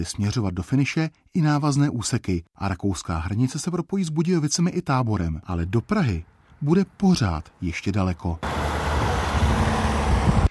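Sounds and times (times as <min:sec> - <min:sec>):
speech: 0:00.0 - 0:08.6
cars driving past on a road: 0:08.4 - 0:10.4.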